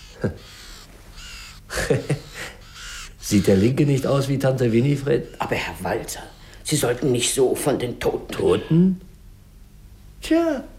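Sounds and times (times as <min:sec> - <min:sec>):
ravens cawing: 0:00.0 - 0:07.7
speech: 0:00.2 - 0:00.6, 0:01.8 - 0:02.2, 0:03.3 - 0:09.1, 0:10.2 - 0:10.7.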